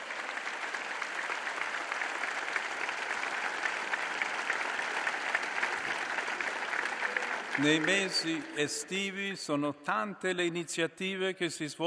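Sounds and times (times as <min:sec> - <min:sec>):
large audience applauding: 0:00.0 - 0:08.7
speech: 0:07.6 - 0:11.8.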